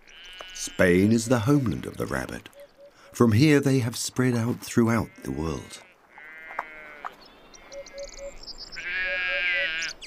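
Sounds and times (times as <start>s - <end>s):
faint birds chirping: 0.0s - 10.0s
sheep bleating on grassy grazing land between oak trees: 0.1s - 2.0s, 4.8s - 7.8s, 8.8s - 10.0s
speech: 0.6s - 2.6s, 3.2s - 5.9s.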